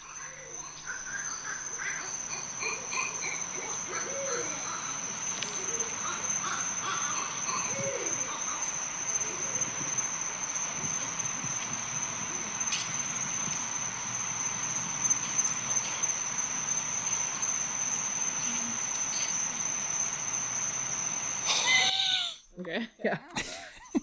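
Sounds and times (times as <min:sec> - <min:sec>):
owls squabbling with screeches and hoots outdoors at night: 0:00.0 - 0:10.2, 0:21.4 - 0:22.4
high insect drone outdoors at night: 0:00.0 - 0:22.5.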